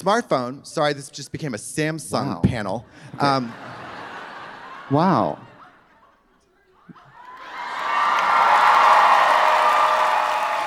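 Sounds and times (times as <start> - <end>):
speech: 0.0 - 3.8, 4.9 - 5.5
laughter: 3.0 - 7.9
crowd cheering and yelling: 7.1 - 10.6.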